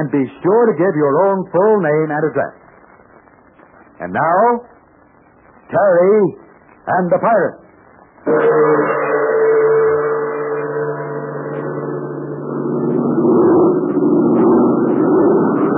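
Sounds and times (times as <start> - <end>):
speech: 0.0 - 2.6, 4.0 - 4.7, 5.7 - 7.6, 8.2 - 9.1
big American-made airplane flown for the Chinese Army droning in flight: 8.1 - 15.7.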